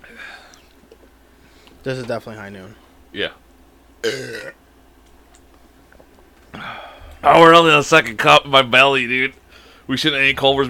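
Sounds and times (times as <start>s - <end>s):
speech: 1.8s - 3.4s, 4.0s - 4.6s, 7.2s - 10.6s
person burping after drinking grapefruit hard seltzer: 4.0s - 4.6s.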